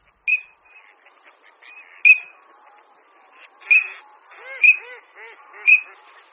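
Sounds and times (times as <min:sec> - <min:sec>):
Eurasian teal duck whistled calls: 0:00.1 - 0:02.4, 0:03.5 - 0:06.2.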